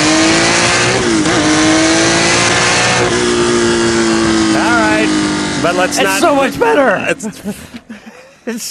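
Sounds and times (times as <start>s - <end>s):
car engine revving on boost: 0.0s - 8.0s
speech: 5.6s - 8.6s
laughter: 6.0s - 8.6s.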